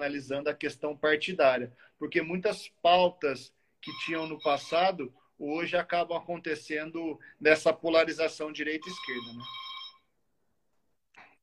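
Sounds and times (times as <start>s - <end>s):
speech: 0.0s - 9.7s
intercom ringing with electronic tone: 3.8s - 5.0s, 8.7s - 10.0s.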